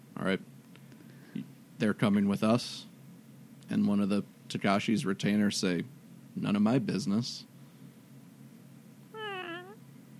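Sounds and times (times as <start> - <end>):
steady low hum: 0.0 - 10.1
speech: 0.2 - 0.6, 1.4 - 2.9, 3.7 - 7.5
cat meowing: 9.2 - 9.8.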